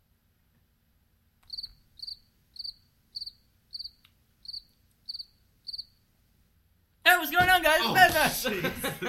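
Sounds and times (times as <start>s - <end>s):
cricket chirping sound effect: 1.4s - 6.1s
speech: 7.2s - 9.0s
laughter: 7.6s - 9.0s.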